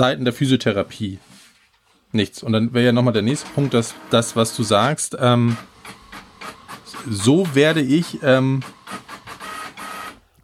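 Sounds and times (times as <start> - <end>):
speech: 0.0 - 1.3, 2.1 - 6.0, 7.0 - 9.0
printer printing: 3.1 - 10.3.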